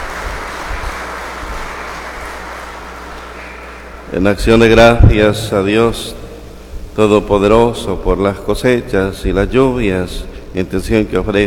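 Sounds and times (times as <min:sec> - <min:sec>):
audience applause at a church Mass: 0:00.0 - 0:03.6
speech: 0:04.1 - 0:06.2, 0:07.0 - 0:11.4.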